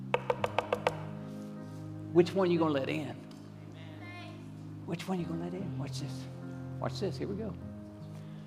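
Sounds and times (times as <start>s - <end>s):
knocking on a door: 0.2s - 1.1s
speech: 2.1s - 3.2s, 4.9s - 7.7s.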